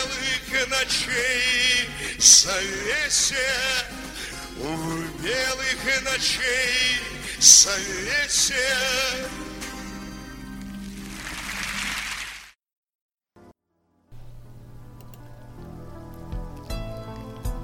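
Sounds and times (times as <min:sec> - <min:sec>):
musical backing with sustained tones: 0:00.0 - 0:12.2, 0:14.2 - 0:17.6
speech: 0:00.6 - 0:09.6
steady summer rain pattering on an iron-sheet roof: 0:10.6 - 0:12.5.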